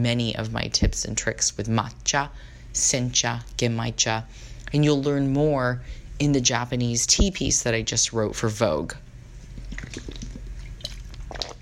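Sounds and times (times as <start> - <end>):
speech: 0.0 - 9.1
person drinking water: 9.3 - 11.6.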